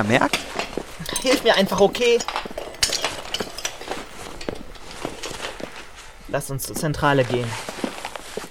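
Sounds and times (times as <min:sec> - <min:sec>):
speech: 0:00.0 - 0:02.5, 0:06.3 - 0:07.7
broken glass shards clinking and scraping as they are gathered up: 0:00.5 - 0:06.0.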